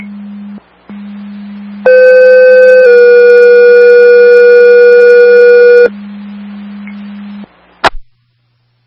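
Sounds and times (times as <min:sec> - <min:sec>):
low hum: 0:00.0 - 0:08.8
radio dispatch paging alert tones for an ambulance: 0:01.9 - 0:06.0.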